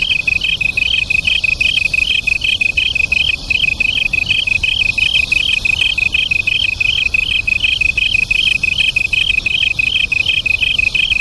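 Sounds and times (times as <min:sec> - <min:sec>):
Japanese tree cricket sustained shrill trill: 0:00.0 - 0:11.1
Japanese tree crickets chirping in duet: 0:00.0 - 0:11.1.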